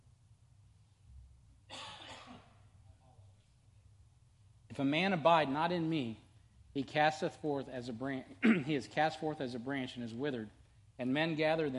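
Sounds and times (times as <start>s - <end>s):
low steady hum: 0.0s - 11.7s
person coughing: 1.7s - 2.6s, 8.4s - 8.8s
speech: 4.8s - 6.2s, 6.8s - 11.7s.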